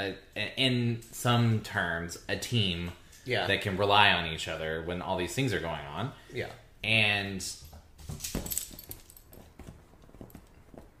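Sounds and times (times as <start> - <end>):
speech: 0.0 - 8.6
dog collar tags jingling: 7.5 - 10.7.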